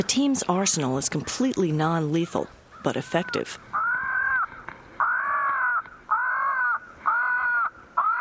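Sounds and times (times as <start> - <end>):
speech: 0.0 - 3.7
faint noise: 0.0 - 8.1
recorded crow distress calls played over a speaker: 2.1 - 8.1.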